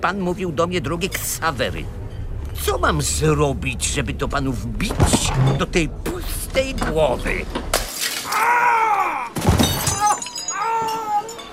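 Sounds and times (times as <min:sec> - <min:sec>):
speech: 0:00.0 - 0:02.0, 0:02.6 - 0:07.8
glass bottle smashed over a man's head: 0:07.7 - 0:08.4, 0:09.4 - 0:11.5
breaking glass scattering: 0:07.7 - 0:08.5, 0:09.4 - 0:11.5
loud drawn-out vocal cries: 0:08.2 - 0:11.5.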